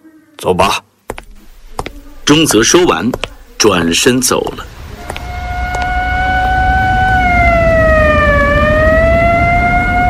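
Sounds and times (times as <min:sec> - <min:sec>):
speech: 0:00.4 - 0:00.9, 0:02.3 - 0:04.8
rumbling street background: 0:01.1 - 0:10.0
police and military vehicle siren wailing: 0:05.1 - 0:10.0.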